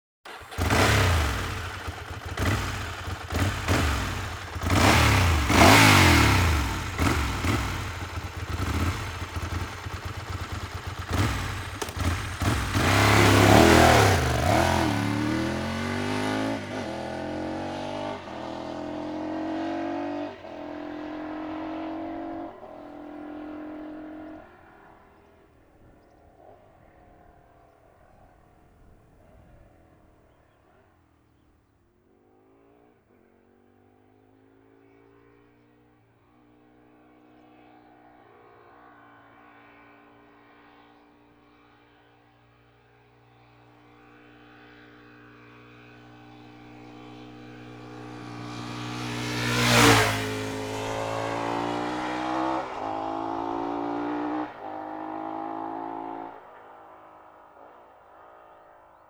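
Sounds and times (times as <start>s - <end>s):
Ducati 748 motorcycle engine: 0.3s - 26.1s, 44.0s - 57.4s.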